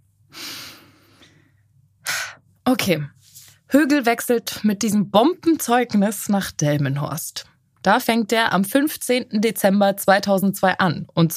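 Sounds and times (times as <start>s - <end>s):
deep breath: 0.3s - 2.4s
speech: 2.7s - 11.3s.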